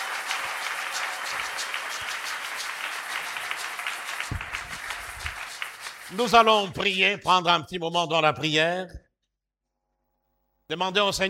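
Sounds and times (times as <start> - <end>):
church congregation applauding: 0.0 - 7.0
speech: 6.1 - 9.0, 10.7 - 11.2.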